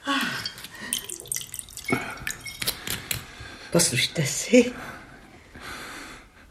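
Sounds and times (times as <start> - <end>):
liqueur drips: 0.1 - 3.2
liqueur poured into a glass: 0.3 - 3.2
glass clinks: 0.4 - 3.2
speech: 1.9 - 2.2, 3.7 - 5.0.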